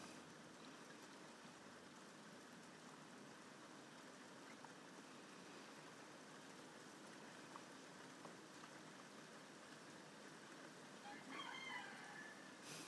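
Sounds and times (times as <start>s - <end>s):
heavy rain: 0.0s - 12.8s
rooster crowing: 11.0s - 12.6s.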